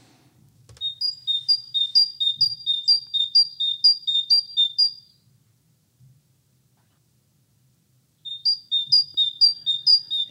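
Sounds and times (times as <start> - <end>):
great tit singing two-note see-saw song: 0.8 - 5.0, 8.2 - 10.3.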